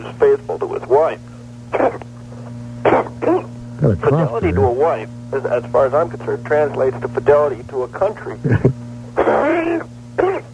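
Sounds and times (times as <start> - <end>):
speech: 0.0 - 2.0, 3.8 - 8.8
faint steady electrical hum: 0.0 - 10.5
man coughing harshly: 1.7 - 2.1, 2.8 - 3.5, 8.5 - 10.5.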